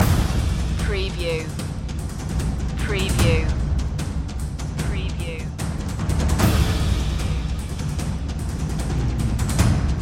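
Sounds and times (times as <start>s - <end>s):
percussion loop: 0.0s - 10.0s.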